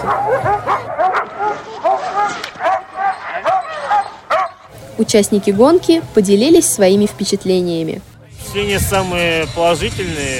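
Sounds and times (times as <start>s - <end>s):
speech: 0.0s - 2.6s, 5.0s - 10.3s
husky dogs barking and yipping at a ski race: 0.0s - 4.8s.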